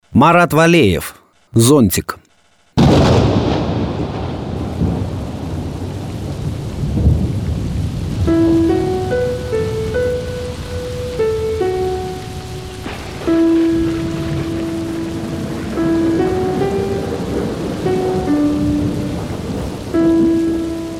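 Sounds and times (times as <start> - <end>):
speech: 0.2 - 2.2
deep rolls of thunder: 2.8 - 20.9
heavy rain pouring: 2.8 - 20.9
gentle melodic tune: 8.2 - 20.9.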